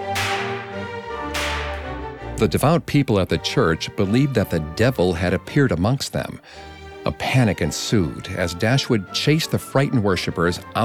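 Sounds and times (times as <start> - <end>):
whip lashes cracking: 0.0 - 2.6
speech: 2.4 - 10.8.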